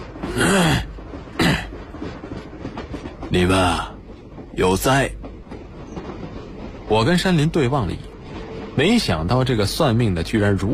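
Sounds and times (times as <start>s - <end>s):
old man clearing his throat forcefully: 0.3s - 1.8s
speech: 3.3s - 3.9s, 4.6s - 5.2s, 6.9s - 8.1s, 8.8s - 10.7s.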